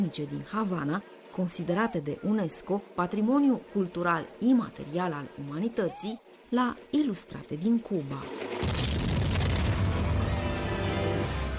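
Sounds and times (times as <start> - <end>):
speech: 0.0 - 8.8
cannon shot fired at nine o'clock: 8.4 - 10.5.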